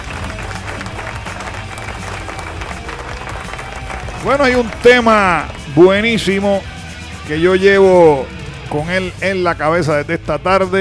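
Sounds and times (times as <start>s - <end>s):
audience applause: 0.0s - 6.1s
speech: 4.2s - 6.7s, 7.3s - 10.7s.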